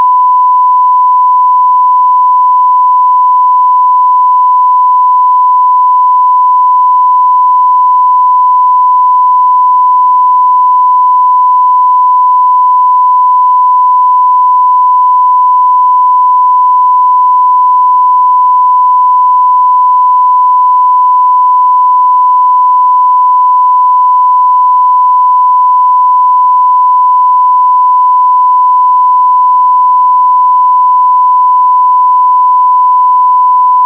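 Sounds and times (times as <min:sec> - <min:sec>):
1 kHz tone: 0:00.0 - 0:33.8.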